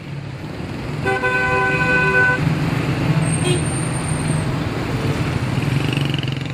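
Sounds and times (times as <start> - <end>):
busy city street traffic engines roaring in Tehran: 0.0 - 6.5
loud sustained car horn blast: 1.0 - 2.4.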